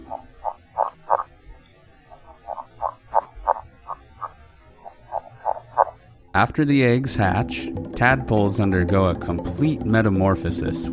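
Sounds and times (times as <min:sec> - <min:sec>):
male northern red-legged frog underwater mating call: 0:00.0 - 0:06.2
speech: 0:06.4 - 0:10.9.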